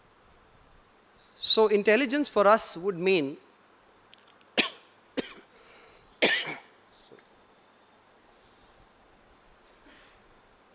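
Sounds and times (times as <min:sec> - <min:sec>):
speech: 0:01.4 - 0:03.5
person coughing: 0:04.6 - 0:05.5, 0:06.2 - 0:06.7.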